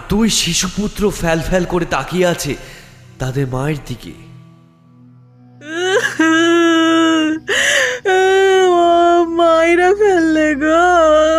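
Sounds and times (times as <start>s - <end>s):
speech: 0.1s - 4.3s
pregnant woman wailing after falling to the ground: 5.6s - 11.3s.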